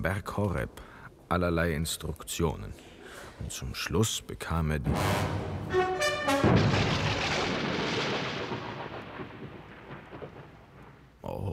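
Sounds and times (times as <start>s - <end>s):
speech: 0.0s - 6.9s
thunderclap: 4.9s - 11.2s.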